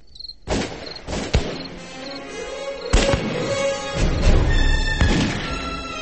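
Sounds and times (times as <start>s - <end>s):
gunshots outside a house in Beijing: 0.4s - 1.8s, 2.9s - 5.8s.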